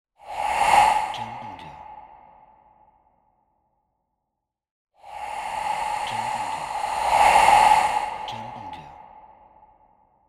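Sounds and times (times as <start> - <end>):
Halloween horror sound effects: 0.2 - 2.8, 5.0 - 9.7.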